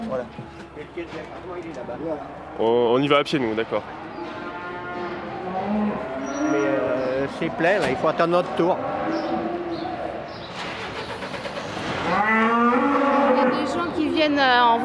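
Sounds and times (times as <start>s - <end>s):
livestock truck engine rumbling low: 0.0s - 14.8s
speech: 0.1s - 4.4s, 5.7s - 9.2s, 14.2s - 14.8s
cows and calves mooing inside a livestock truck: 2.0s - 3.2s, 3.8s - 10.3s, 11.9s - 14.0s.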